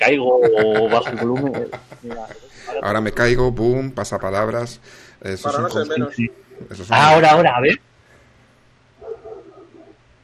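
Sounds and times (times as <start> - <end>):
laughter: 0.0 - 2.8
speech: 0.1 - 7.9
dog barking: 9.0 - 10.1.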